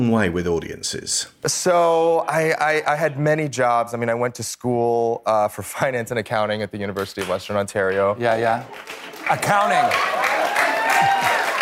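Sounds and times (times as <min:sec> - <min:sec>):
speech: 0:00.0 - 0:10.3
audience applauding: 0:07.9 - 0:11.5.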